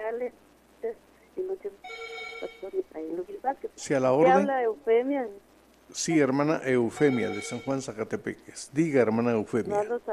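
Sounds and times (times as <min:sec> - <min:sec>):
speech: 0:00.1 - 0:10.1
telephone ringing with an incoming call: 0:01.8 - 0:02.8, 0:06.9 - 0:07.9.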